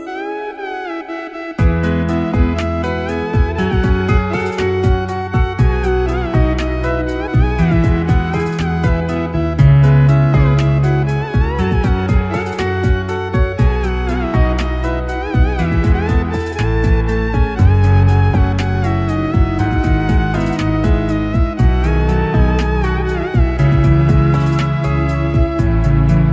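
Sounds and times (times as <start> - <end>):
instrumental ringtone: 0.0 - 25.7.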